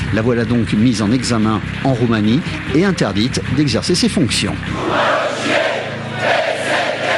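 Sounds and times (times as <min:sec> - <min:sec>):
speech: 0:00.1 - 0:06.4
large street protest crowd chanting outdoors: 0:04.7 - 0:07.1.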